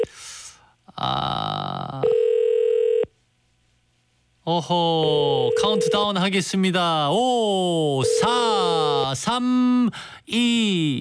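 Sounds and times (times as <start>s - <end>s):
speech: 1.0s - 1.6s, 4.5s - 10.9s
ringback tone on an unanswered phone call: 2.0s - 3.0s, 5.4s - 6.2s, 8.0s - 8.5s.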